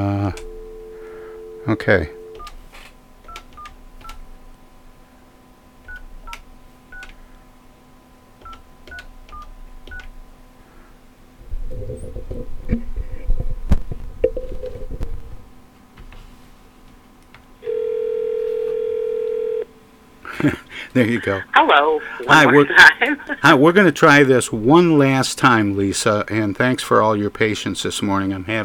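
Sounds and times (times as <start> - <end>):
telephone dial tone hum: 0.1 - 2.5, 17.6 - 19.7
speech: 0.3 - 0.5, 1.6 - 2.2, 21.0 - 28.6
telephone keypad tones during redialing: 1.4 - 2.6, 3.3 - 4.2, 8.4 - 10.1.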